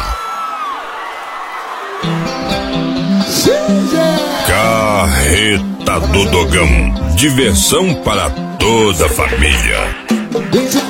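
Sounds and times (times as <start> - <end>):
crowd shouting and whooping: 0.0 - 5.1
speech: 3.3 - 10.8.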